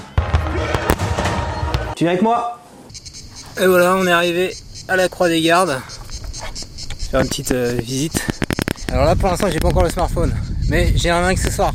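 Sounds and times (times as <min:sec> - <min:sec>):
fireworks exploding in sharp booms and cracks: 0:00.0 - 0:02.0
speech: 0:02.0 - 0:02.6, 0:03.6 - 0:06.0, 0:07.1 - 0:11.7.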